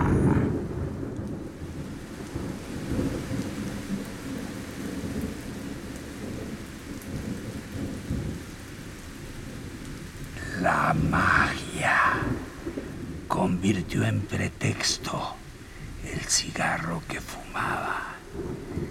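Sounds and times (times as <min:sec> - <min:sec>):
deep rumbles of thunder in a heavy thunderstorm: 0:00.0 - 0:18.8
steady dense rain pouring in a heavy thunderstorm: 0:00.0 - 0:18.8.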